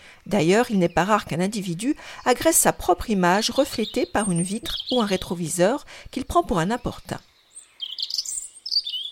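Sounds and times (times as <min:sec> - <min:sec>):
European robin singing: 0:00.0 - 0:09.1
speech: 0:00.2 - 0:07.3.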